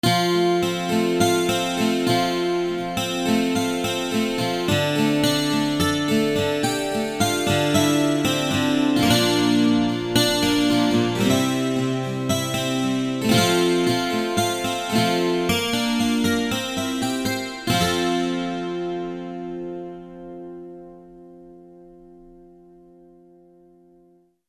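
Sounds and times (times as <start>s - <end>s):
12 string guitar: 0.0s - 24.2s.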